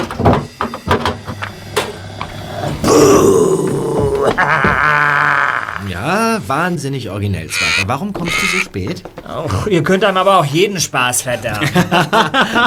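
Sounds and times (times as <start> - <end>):
knocks and clatters of a caravan door being yanked open: 0.0 - 2.4, 8.0 - 9.7
masked person groaning imitating a zombie: 2.0 - 5.9
laughter: 3.6 - 6.3, 11.2 - 12.6
speech: 6.5 - 12.6.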